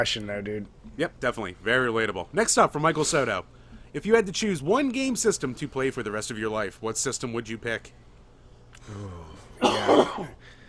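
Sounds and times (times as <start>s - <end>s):
speech: 0.0s - 8.1s, 8.8s - 10.6s
phlegmy cough: 9.6s - 10.4s.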